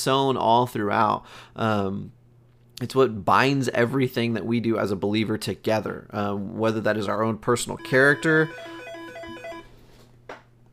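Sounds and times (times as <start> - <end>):
speech: 0.0 - 2.2, 2.8 - 8.8
phone ringtone with bright repeating electronic notes: 7.8 - 9.7.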